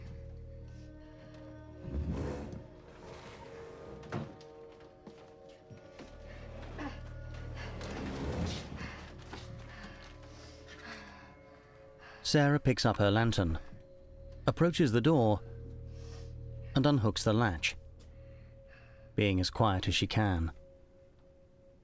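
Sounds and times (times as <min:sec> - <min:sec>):
heavy chest of drawers scraping as pushed away from a door: 0:01.8 - 0:04.5, 0:07.7 - 0:09.2
speech: 0:12.3 - 0:13.7, 0:14.5 - 0:15.5, 0:16.8 - 0:17.8, 0:19.2 - 0:20.6.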